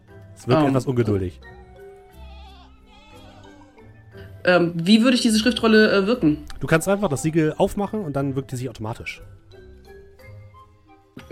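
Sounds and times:
speech: 0:00.4 - 0:01.6, 0:04.5 - 0:09.4
human voice imitating a sheep's bleat: 0:02.2 - 0:03.8.

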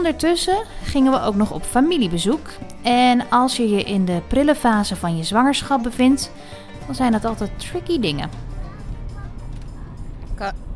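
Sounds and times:
speech: 0:00.0 - 0:08.4, 0:10.4 - 0:10.6
engine and road rumble inside a moving car: 0:06.7 - 0:10.7.

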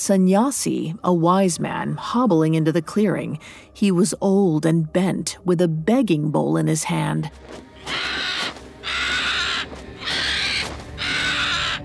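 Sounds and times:
speech: 0:00.0 - 0:08.3
bird screaming: 0:07.8 - 0:11.8.

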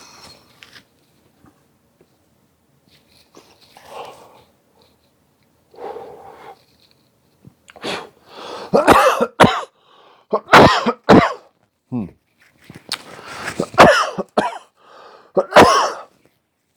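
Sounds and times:
person coughing in hacking fits: 0:08.7 - 0:11.5, 0:13.6 - 0:14.8, 0:15.4 - 0:16.1.

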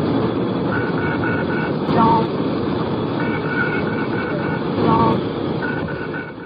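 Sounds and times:
aircraft engine and cockpit noise roar: 0:00.0 - 0:06.4
aircraft cockpit stall warning alarm beeping on takeoff: 0:01.1 - 0:02.4, 0:03.0 - 0:06.3.

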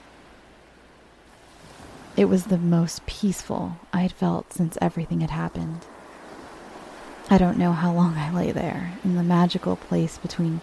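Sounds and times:
gently lapping waves: 0:00.0 - 0:10.6
speech: 0:02.2 - 0:05.9, 0:07.3 - 0:10.6.

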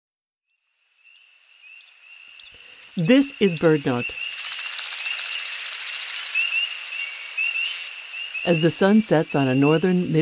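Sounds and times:
American woodcock wingtip feathers twittering in spiralling flight: 0:00.8 - 0:10.2
speech: 0:03.0 - 0:04.3, 0:08.4 - 0:10.2.

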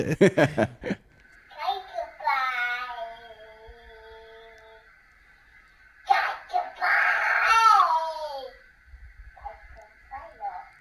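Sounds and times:
speech: 0:00.0 - 0:01.0
laughter: 0:00.0 - 0:01.1
steady electronic hum of a baby monitor: 0:00.0 - 0:10.7
young child singing through a baby monitor: 0:01.5 - 0:05.1, 0:06.0 - 0:08.6, 0:09.4 - 0:10.7.

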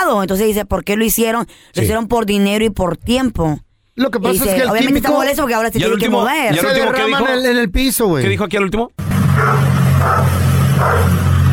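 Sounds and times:
speech: 0:00.1 - 0:11.2
dog barking and whining: 0:09.4 - 0:11.2.

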